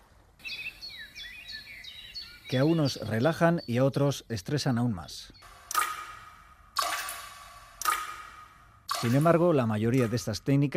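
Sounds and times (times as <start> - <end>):
birds singing: 0.0 - 6.7
speech: 2.5 - 5.5, 9.0 - 10.7.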